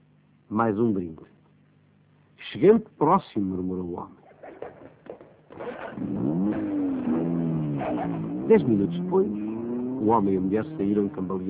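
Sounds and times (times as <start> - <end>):
speech: 0.5 - 1.4, 2.5 - 4.2, 7.8 - 9.4, 10.0 - 11.4
car engine revving as a car pulls away from a tavern: 5.5 - 11.4.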